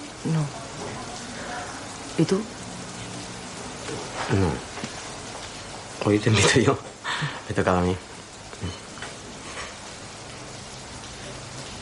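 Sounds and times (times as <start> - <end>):
rain falling: 0.0 - 11.8
speech: 0.2 - 0.6, 2.2 - 2.6, 3.9 - 5.0, 6.1 - 8.8.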